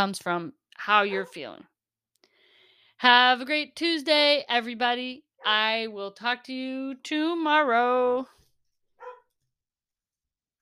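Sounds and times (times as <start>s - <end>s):
speech: 0.0s - 1.7s, 3.0s - 8.4s
dog barking: 9.0s - 9.3s.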